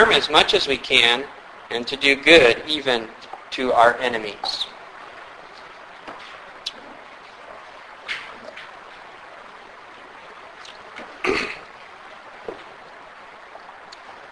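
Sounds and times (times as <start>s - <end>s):
speech: 0.0s - 4.7s
person drinking water with sips and swallows: 5.5s - 8.9s, 10.5s - 11.8s
short sharp throat clearing: 11.2s - 11.6s.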